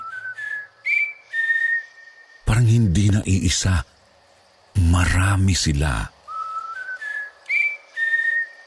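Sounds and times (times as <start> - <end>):
person whistling a greeting: 0.0 - 2.2, 6.3 - 8.6
speech: 2.6 - 4.0, 4.8 - 6.2.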